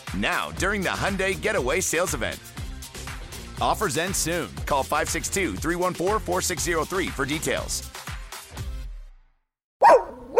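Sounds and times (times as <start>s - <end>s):
speech: 0.2s - 2.6s, 3.6s - 8.0s
dog barking: 9.8s - 10.3s
softer rough canine sound: 9.8s - 10.3s.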